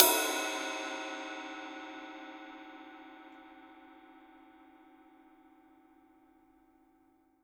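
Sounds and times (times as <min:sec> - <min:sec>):
rock drum kit cymbal: 0:00.0 - 0:03.2.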